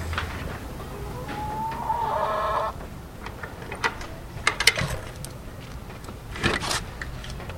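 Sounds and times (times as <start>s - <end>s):
hens clucking in a backyard chicken coop in the Bronx: 0.0s - 5.5s
steady hum: 0.0s - 7.5s.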